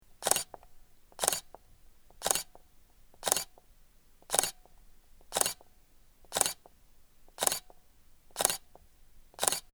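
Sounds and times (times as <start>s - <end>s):
Canon EOS Rebel XSi 450D camera: 0.2s - 2.6s, 3.2s - 3.6s, 4.3s - 4.6s, 5.3s - 5.7s, 6.3s - 6.6s, 7.4s - 7.8s, 8.4s - 8.8s, 9.4s - 9.7s.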